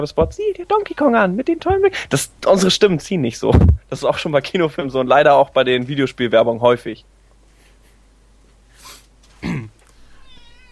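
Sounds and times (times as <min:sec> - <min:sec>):
speech: 0:00.0 - 0:07.1
cat meowing: 0:10.1 - 0:10.6.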